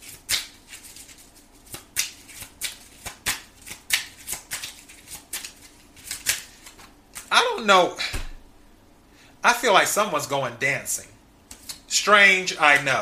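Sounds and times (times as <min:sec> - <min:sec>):
deck of cards shuffled by hand: 0:00.0 - 0:07.3
speech: 0:07.5 - 0:08.1, 0:09.6 - 0:11.1, 0:12.0 - 0:13.0.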